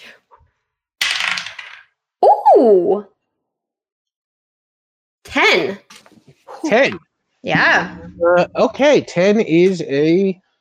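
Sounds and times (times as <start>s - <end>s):
six-sided die rolling across a hard surface: 1.0s - 2.0s
speech: 2.6s - 3.1s, 5.3s - 5.9s, 6.6s - 10.4s.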